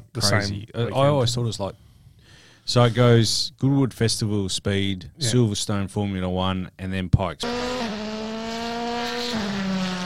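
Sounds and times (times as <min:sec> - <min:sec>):
speech: 0:00.2 - 0:01.9, 0:02.7 - 0:07.9
gymkhana performance car engine revving: 0:07.4 - 0:10.0.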